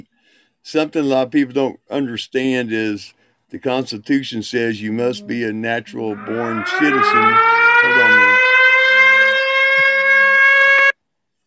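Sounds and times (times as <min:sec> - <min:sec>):
speech: 0:00.6 - 0:08.5
faint sounds: 0:01.3 - 0:08.3
steady electronic alarm with siren-like tone: 0:05.1 - 0:11.0.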